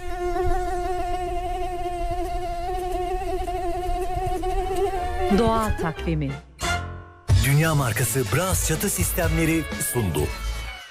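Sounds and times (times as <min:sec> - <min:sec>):
female mosquito wing buzz: 0:00.0 - 0:05.5
speech: 0:05.3 - 0:06.5, 0:07.4 - 0:10.4.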